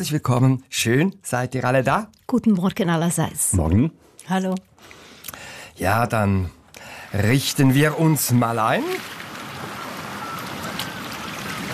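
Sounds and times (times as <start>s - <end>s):
speech: 0.0s - 5.0s, 5.8s - 9.1s
sea waves lapping: 6.8s - 11.7s.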